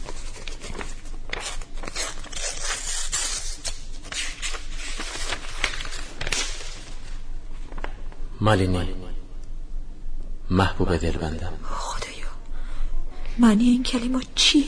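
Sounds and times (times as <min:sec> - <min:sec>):
paper envelope holding a letter torn open: 0:00.0 - 0:07.0
speech: 0:08.4 - 0:09.0, 0:10.5 - 0:11.8, 0:13.4 - 0:14.6.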